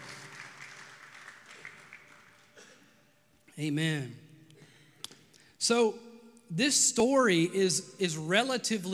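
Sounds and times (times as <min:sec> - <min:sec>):
audience applauding: 0:00.0 - 0:02.7
speech: 0:03.6 - 0:04.2, 0:05.6 - 0:08.9.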